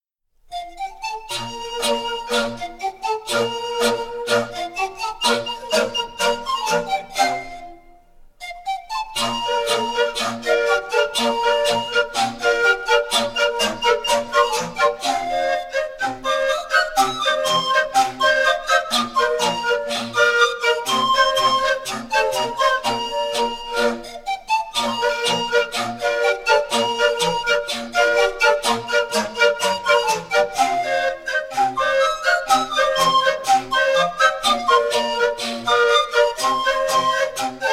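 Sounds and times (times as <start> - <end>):
firlinfeu panpipes playing: 0.5 - 37.7.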